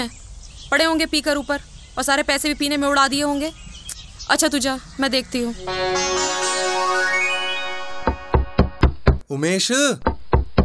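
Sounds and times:
speech: 0.0s - 3.7s, 4.3s - 6.4s, 9.3s - 10.1s
sustained tonal hum: 5.5s - 9.2s
loud knocking on a door: 8.3s - 9.2s, 10.0s - 10.6s.

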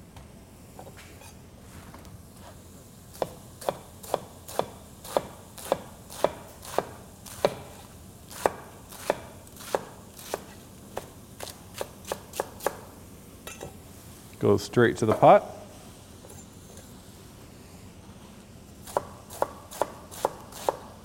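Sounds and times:
knife slicing leafy greens thinly into a chiffonade: 3.1s - 12.8s, 18.8s - 21.0s
speech: 14.4s - 15.6s.

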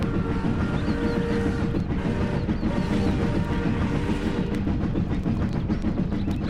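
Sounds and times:
heavy train roaring out of a tunnel: 0.0s - 6.4s.

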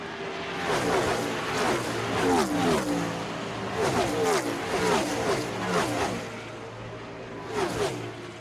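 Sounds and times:
race cars roaring past: 0.0s - 8.3s.

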